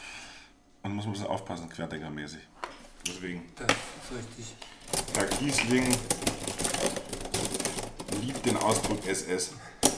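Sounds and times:
speech: 0:00.9 - 0:07.0, 0:08.2 - 0:09.9
keys clacking on a mechanical typewriter: 0:04.8 - 0:09.2.

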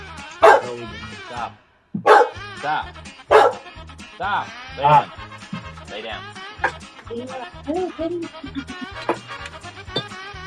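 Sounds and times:
dog barking: 0:00.4 - 0:00.8, 0:02.0 - 0:02.4, 0:03.3 - 0:03.7, 0:06.6 - 0:06.9
dog yelping: 0:00.4 - 0:00.8, 0:02.0 - 0:02.4, 0:03.3 - 0:03.7
speech: 0:00.7 - 0:03.1, 0:04.2 - 0:09.4
laughter: 0:06.7 - 0:09.8.

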